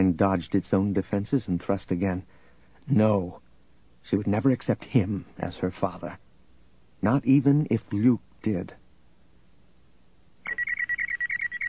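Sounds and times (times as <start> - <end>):
speech: 0.1 - 3.4, 4.0 - 6.2, 7.0 - 8.8
futuristic communicator device beeping: 10.5 - 11.6.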